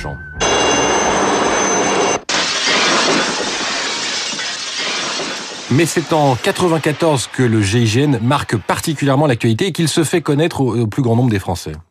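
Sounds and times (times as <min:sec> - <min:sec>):
speech: 0:00.0 - 0:01.1, 0:05.7 - 0:11.8
window glass shattering as man swings in from helicopter cable: 0:01.2 - 0:08.1
tinkling glass shards raining down and scattering: 0:02.3 - 0:06.3.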